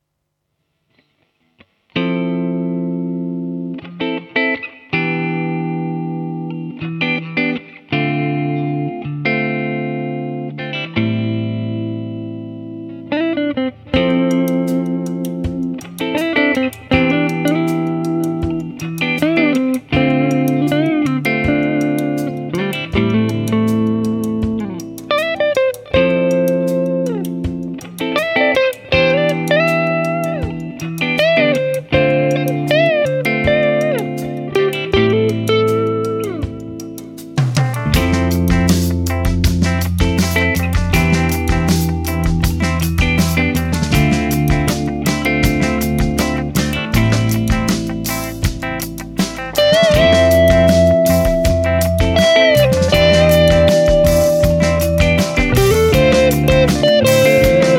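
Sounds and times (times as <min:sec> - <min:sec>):
Gibson Melody Maker electric guitar clean tone: 0:00.9 - 0:57.7.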